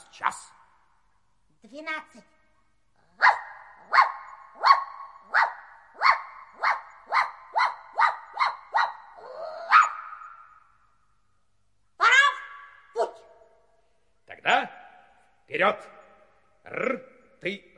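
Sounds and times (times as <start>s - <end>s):
speech: 0.2s - 0.6s, 1.6s - 2.4s, 15.5s - 16.0s, 16.7s - 17.7s
dog whining: 3.2s - 10.5s
dog barking: 3.2s - 10.6s, 12.0s - 13.4s.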